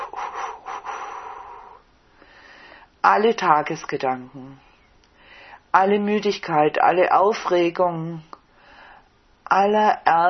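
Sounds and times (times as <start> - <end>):
deep breathing in and out during guided relaxation: 0.0 - 3.0, 4.6 - 5.7, 8.5 - 9.2
speech: 3.0 - 4.7, 5.7 - 8.3, 9.5 - 10.2.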